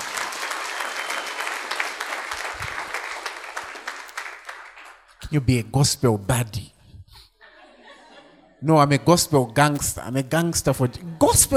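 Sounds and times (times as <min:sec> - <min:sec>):
audience applauding: 0:00.0 - 0:05.2
speech: 0:05.3 - 0:06.7, 0:08.6 - 0:11.5
laughter: 0:07.4 - 0:10.1.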